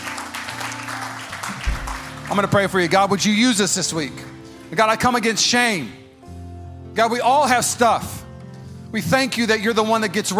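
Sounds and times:
audience applauding: 0.0s - 3.3s
sustained low keyboard chords: 0.0s - 10.3s
speech: 2.3s - 6.0s, 7.0s - 8.2s, 8.9s - 10.3s.

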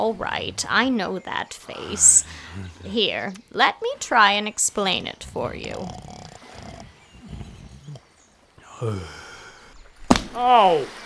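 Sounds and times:
snoring with low rumbling breaths and throaty snorts: 0.0s - 3.5s, 4.6s - 9.5s
speech: 0.0s - 6.2s, 8.8s - 9.2s, 10.4s - 11.0s.

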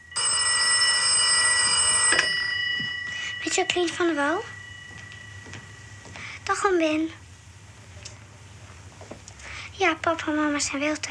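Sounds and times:
old-fashioned telephone bell ringing: 0.0s - 6.2s
speech: 3.6s - 4.6s, 6.5s - 7.2s, 9.8s - 11.0s.

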